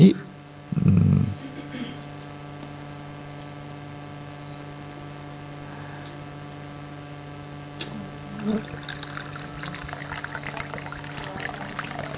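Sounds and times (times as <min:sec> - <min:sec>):
constant electrical hum: 0:00.0 - 0:12.1
water pouring into a container: 0:08.4 - 0:12.1.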